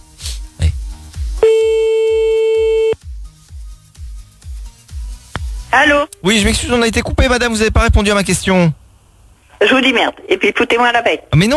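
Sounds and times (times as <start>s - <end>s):
short regular telephone pulses like a busy signal: 1.4s - 3.0s
steady telephone line tone while redialing: 1.4s - 3.0s
speech: 5.8s - 8.8s, 9.6s - 11.5s.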